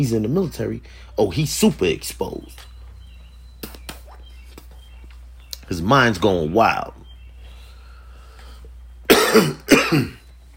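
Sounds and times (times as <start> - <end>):
speech: 0.0 - 2.7, 5.7 - 7.0, 9.3 - 10.2
harsh coughs: 9.1 - 10.2.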